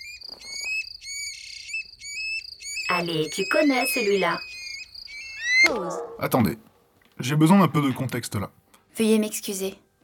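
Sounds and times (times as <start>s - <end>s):
song thrush singing: 0.0s - 6.2s
speech: 3.0s - 4.5s, 5.7s - 9.8s.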